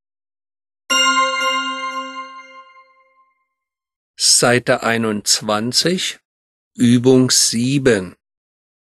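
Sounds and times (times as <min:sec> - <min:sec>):
single bright metallic bell strike ringing: 0:00.9 - 0:03.4
speech: 0:04.4 - 0:06.2, 0:06.8 - 0:08.2.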